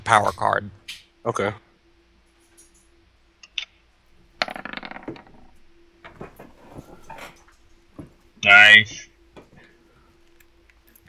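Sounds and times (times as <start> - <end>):
speech: 0.1 - 1.6, 8.5 - 9.1
ten-sided die rolled in a tabletop role-playing game: 4.4 - 7.4.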